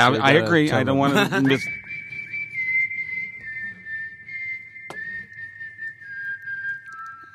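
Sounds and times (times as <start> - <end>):
speech: 0.0 - 1.8
laughter: 0.8 - 1.8
person whistling a tune: 1.2 - 7.3.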